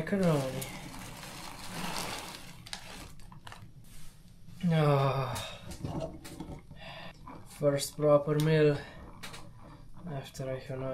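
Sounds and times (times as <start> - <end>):
speech: 0.0 - 0.8, 4.6 - 6.2, 7.6 - 8.9, 10.0 - 10.9
liquid bubbling in a cooking pot over a fire for carbonara: 5.9 - 10.9.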